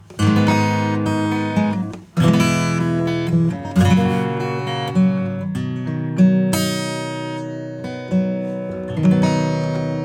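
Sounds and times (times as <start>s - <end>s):
acoustic guitar through tube overdrive: 0.0s - 10.0s.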